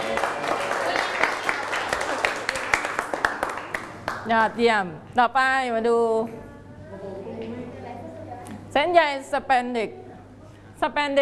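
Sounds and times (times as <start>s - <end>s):
room full of children clapping: 0.0s - 4.4s
speech: 4.3s - 6.5s, 8.8s - 10.0s, 10.8s - 11.2s.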